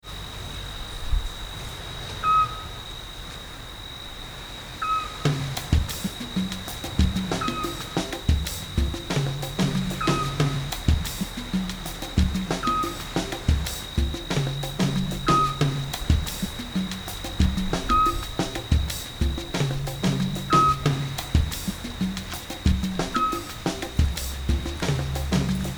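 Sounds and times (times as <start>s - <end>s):
music groove: 5.3s - 25.7s.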